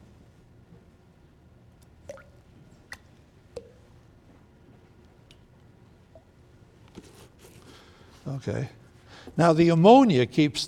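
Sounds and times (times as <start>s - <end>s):
low steady hum: 0.0s - 10.6s
liquid latex poured into a container of water: 1.8s - 3.9s
speech: 8.2s - 10.6s.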